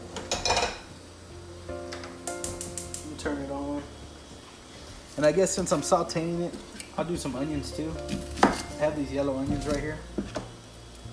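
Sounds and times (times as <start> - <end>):
metal pan clanking and scraping on stovetop: 0.2 - 0.9
speech: 5.2 - 10.2.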